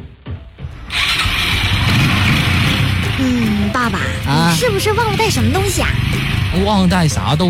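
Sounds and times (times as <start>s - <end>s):
motorcycle engine cranking and settling into rumbling idle: 0.8s - 7.4s
speech: 3.9s - 7.4s.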